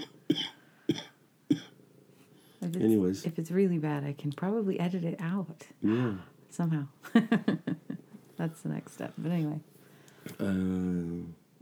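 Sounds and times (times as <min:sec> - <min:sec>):
person coughing: 0:00.0 - 0:01.7
speech: 0:02.7 - 0:07.8, 0:08.4 - 0:11.4
laughter: 0:07.1 - 0:08.0.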